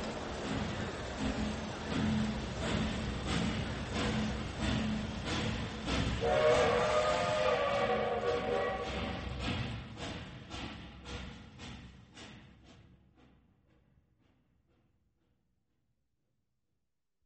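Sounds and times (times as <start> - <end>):
train wheels clattering as train pulls away: 0.0 - 14.9
long train whistle: 6.2 - 9.4.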